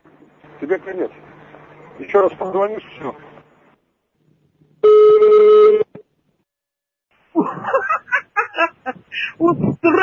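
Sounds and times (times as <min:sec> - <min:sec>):
speech: 0:00.6 - 0:01.4, 0:02.0 - 0:03.3, 0:09.2 - 0:10.0
electronic telephone ring: 0:04.8 - 0:05.9
person laughing in bursts: 0:07.4 - 0:10.0.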